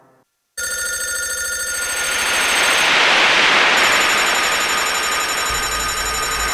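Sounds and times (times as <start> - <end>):
telephone ringing with harsh metallic bell trill: 0.6 - 6.5.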